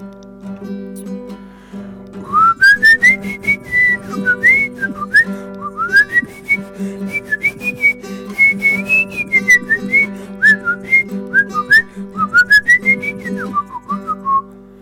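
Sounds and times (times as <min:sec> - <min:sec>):
steady low strummed instrument: 0:00.0 - 0:14.8
person whistling a flowing folk-style melody: 0:02.2 - 0:14.6.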